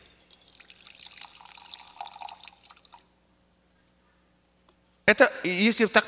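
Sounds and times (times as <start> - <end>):
water pouring steadily into an empty container: 0.3 - 3.0
speech: 5.1 - 6.0.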